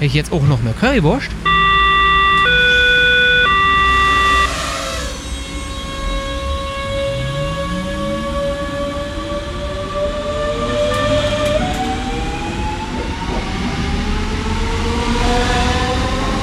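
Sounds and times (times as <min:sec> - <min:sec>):
speech: 0:00.0 - 0:01.6
S-Bahn train wheels rumbling on track: 0:00.0 - 0:16.4
stepped electronic tones of an S-Bahn train: 0:01.4 - 0:08.0
electric S-Bahn commuter train motors whining as it accelerates: 0:01.4 - 0:16.4.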